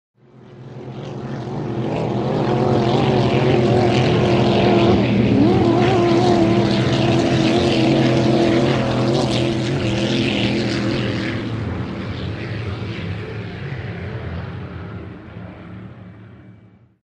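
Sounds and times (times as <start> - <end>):
outboard motorboat passing by: 0.2 - 16.9.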